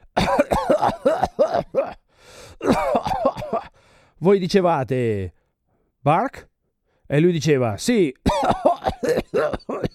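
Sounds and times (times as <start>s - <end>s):
voice imitating a persistent cough: 0.0s - 3.8s, 8.2s - 9.9s
speech: 4.2s - 5.4s, 6.0s - 6.5s, 7.1s - 9.9s.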